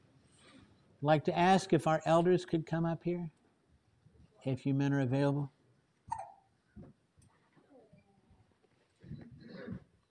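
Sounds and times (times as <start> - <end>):
speech: 1.0 - 3.4, 4.4 - 6.2
baby hiccupping during a baptism ceremony: 6.1 - 6.5.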